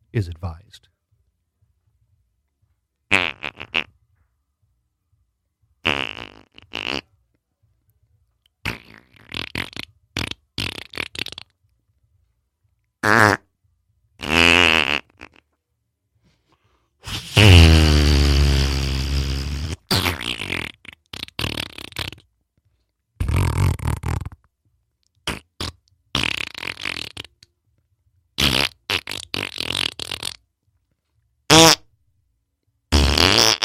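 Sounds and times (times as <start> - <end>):
speech: 0.1 - 0.9
buzzy sputtering fart noises: 3.1 - 4.0, 5.8 - 7.2, 8.6 - 11.6, 13.0 - 13.5, 14.2 - 15.6, 17.0 - 22.4, 23.2 - 24.5, 25.2 - 27.5, 28.4 - 30.5, 31.5 - 31.9, 32.9 - 33.6.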